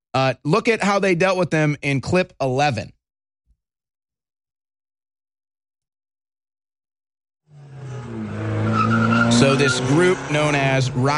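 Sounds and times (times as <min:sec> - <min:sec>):
speech: 0:00.2 - 0:03.0, 0:09.4 - 0:11.1
car tires screeching as vehicles pull up on a street in Kenosha: 0:07.5 - 0:11.1
low car engine rumble: 0:07.5 - 0:11.1.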